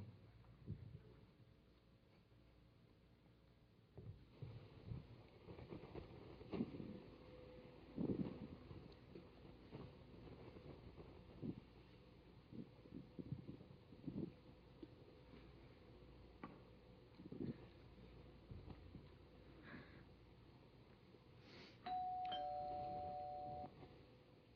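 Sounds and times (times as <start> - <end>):
low rumbling noise: 0.0 - 24.5
two-tone doorbell chime: 21.9 - 23.7.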